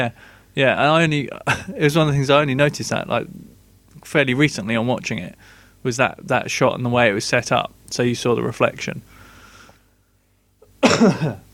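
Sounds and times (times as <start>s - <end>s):
speech: 0.0s - 9.2s, 11.0s - 11.5s
faint throaty intake of breath: 5.4s - 5.8s, 9.1s - 10.0s
harsh cough: 10.7s - 11.5s.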